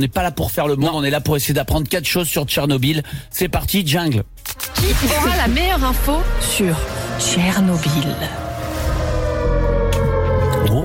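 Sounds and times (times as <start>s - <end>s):
speech: 0.0s - 8.4s
siren sound effect wailing: 5.4s - 10.8s.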